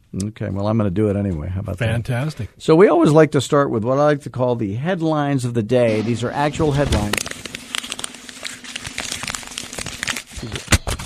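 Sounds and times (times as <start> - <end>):
speech: 0.1 - 7.3
paper printouts of news headlines crinkling: 6.6 - 11.0.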